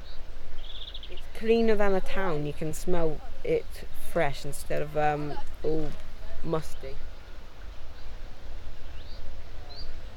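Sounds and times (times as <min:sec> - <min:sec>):
faint bird chirps: 0:00.0 - 0:01.3, 0:08.8 - 0:10.0
speech: 0:01.4 - 0:07.1.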